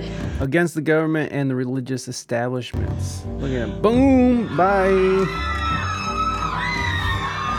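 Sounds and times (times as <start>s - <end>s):
speech: 0.4s - 5.5s
crowd of people yelling and whooping at a man: 4.2s - 7.5s.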